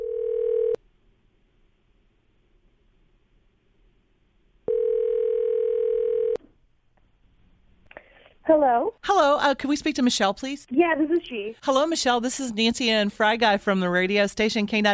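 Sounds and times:
phone line ringback tone on a call: 0.0 - 0.8, 4.7 - 6.4
speech: 8.5 - 14.9.

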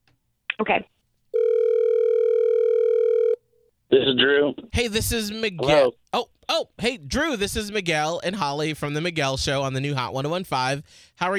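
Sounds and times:
speech: 0.6 - 1.0, 3.9 - 11.3
loud steady electronic telephone tone as a call is placed: 1.4 - 3.4.

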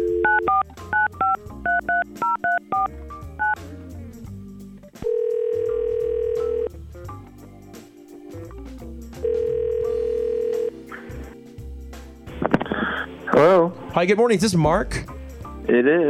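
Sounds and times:
long steady telephone ringing tones: 0.0 - 3.6, 5.0 - 6.7, 9.2 - 10.8
touch-tone telephone keypad beeps: 0.0 - 3.6
speech: 13.4 - 16.0.

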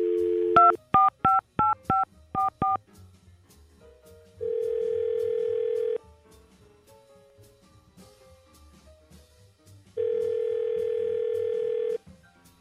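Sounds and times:
telephone touch-tone dialing beeps: 0.0 - 2.8, 4.5 - 6.0, 10.1 - 12.0.

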